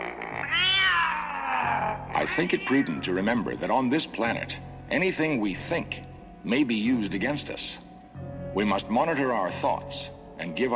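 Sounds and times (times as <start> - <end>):
giant cat meowing outside a cave: 0.0 - 3.1
speech: 2.2 - 7.8, 8.5 - 10.7.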